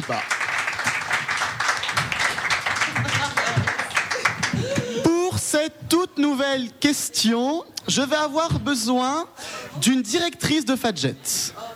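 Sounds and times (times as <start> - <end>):
speech: 0.0 - 0.4, 5.5 - 11.7
audience applause: 0.0 - 4.9.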